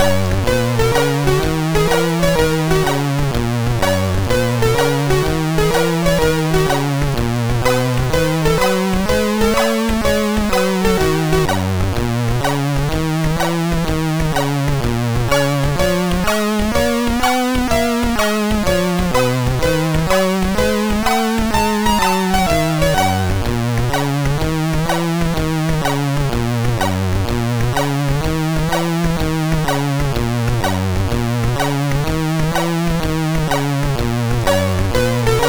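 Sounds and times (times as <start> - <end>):
blues music on a MOS6581R3 SID chip: 0.0 - 35.4.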